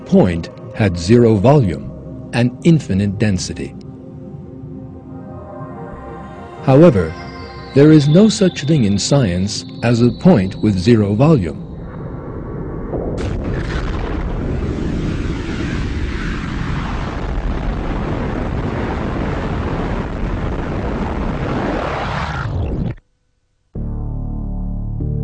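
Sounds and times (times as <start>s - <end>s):
steady tonal hum: 0.0s - 12.9s
speech: 0.1s - 3.8s, 6.6s - 11.6s
explosion sound effect with long deep roaring rumble: 11.7s - 22.9s.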